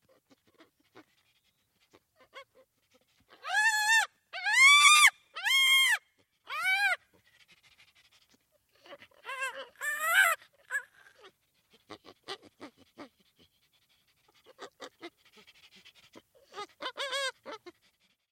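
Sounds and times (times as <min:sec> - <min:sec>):
chimpanzee communication calls with loud arched harmonic cries: 0:03.3 - 0:07.0, 0:09.2 - 0:11.3, 0:16.4 - 0:17.8.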